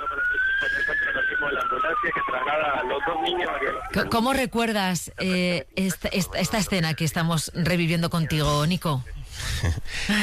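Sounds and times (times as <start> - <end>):
ambulance siren wailing: 0.0 - 4.1
speech: 1.4 - 10.2.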